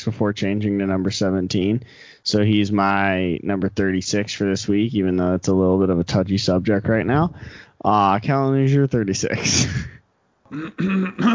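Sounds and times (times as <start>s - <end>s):
speech: 0.0s - 9.9s, 10.5s - 11.3s
person clearing throat in gravelly bursts: 9.6s - 11.3s.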